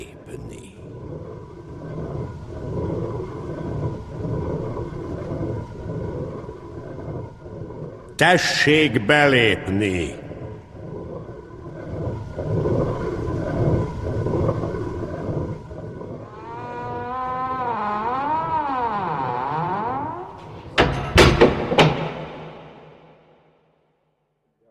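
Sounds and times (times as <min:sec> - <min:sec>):
rumbling background: 0:00.0 - 0:23.5
speech: 0:08.2 - 0:10.2
huge castle gate creaking as it closes: 0:16.2 - 0:22.8
huge castle gate heavy knocks as it shuts: 0:20.4 - 0:23.1.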